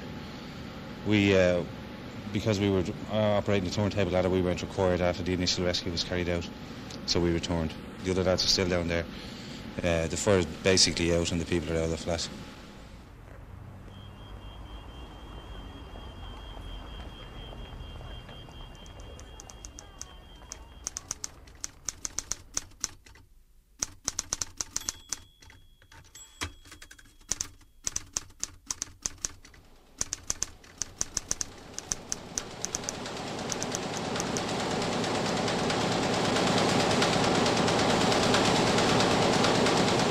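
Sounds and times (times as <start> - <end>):
speech: 1.0 - 12.4
newspaper printing press running at 38,000 copies per hour: 16.4 - 23.2, 23.8 - 40.0.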